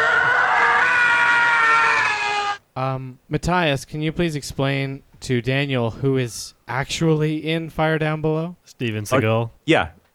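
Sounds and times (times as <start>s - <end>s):
stock movie scream: 0.0s - 2.6s
speech: 3.3s - 10.1s.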